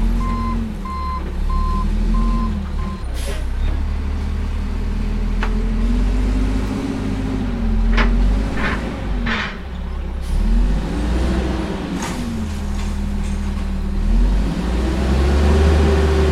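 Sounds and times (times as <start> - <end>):
low truck diesel engine rumble idling: 0.0 - 16.3
truck reversing alarm beeps: 0.2 - 3.1
short hiss like an air brake: 3.1 - 3.5.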